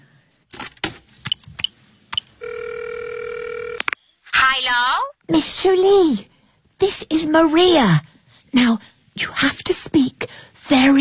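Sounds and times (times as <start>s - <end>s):
telephone ringing tone on an outgoing call: 2.4s - 3.9s
speech: 4.6s - 11.0s.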